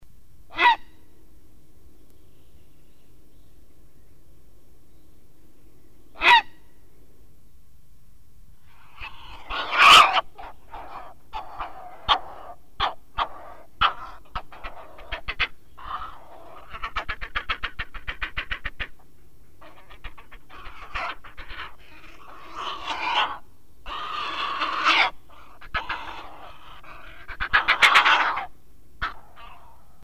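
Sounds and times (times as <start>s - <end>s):
grey heron calling: 6.1s - 6.6s, 8.7s - 30.0s.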